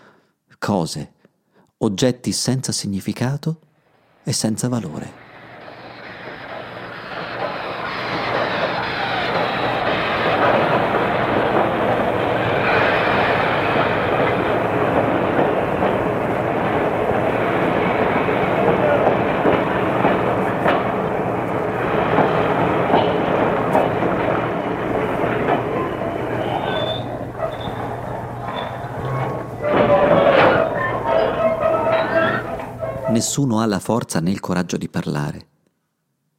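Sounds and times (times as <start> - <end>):
speech: 0.6 - 1.2, 1.8 - 5.3, 33.3 - 35.5
freight train wheels clattering on rails: 4.9 - 33.4.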